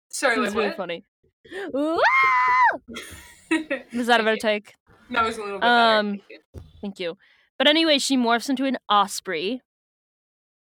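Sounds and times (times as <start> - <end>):
speech: 0.1 - 9.7
person imitating the scream of a skydiver jumping: 1.7 - 2.8
laughter: 2.9 - 4.4.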